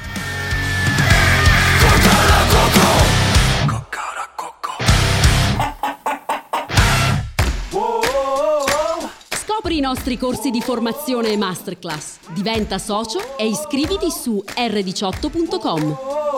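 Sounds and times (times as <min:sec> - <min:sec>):
loud busy burst of music: 0:00.0 - 0:03.6, 0:09.3 - 0:16.0
choppy rhythmic hits: 0:01.1 - 0:03.7, 0:04.8 - 0:16.0
speech: 0:09.8 - 0:16.2.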